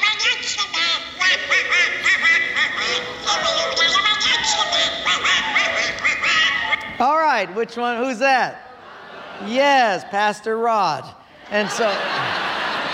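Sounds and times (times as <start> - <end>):
raspy cartoon duck voice quacking: 0.0 - 6.9
speech: 7.0 - 8.6, 9.4 - 12.4
laughter: 8.7 - 10.2, 11.4 - 12.9.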